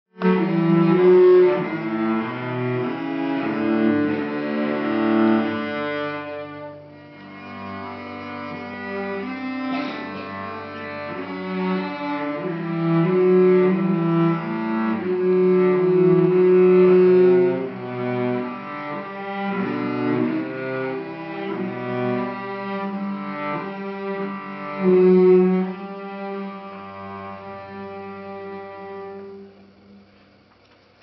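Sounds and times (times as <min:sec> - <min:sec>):
cello: 0:00.1 - 0:30.4.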